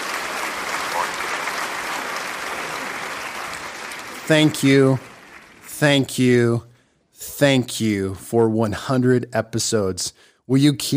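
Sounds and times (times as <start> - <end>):
crowd applause: 0.0 - 6.2
speech: 4.3 - 5.1, 5.8 - 10.9.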